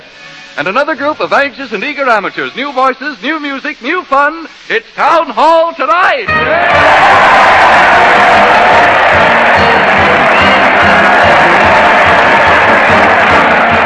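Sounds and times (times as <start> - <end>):
speech: 0.6 - 11.5
large crowd cheering and applauding: 6.3 - 13.8
whoops from a crowd: 6.4 - 13.8.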